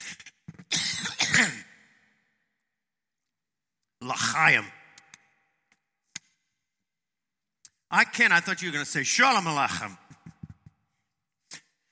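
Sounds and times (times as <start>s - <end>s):
harsh coughing and throat clearing: 0.0s - 1.8s
speech: 4.1s - 4.8s, 7.9s - 10.0s.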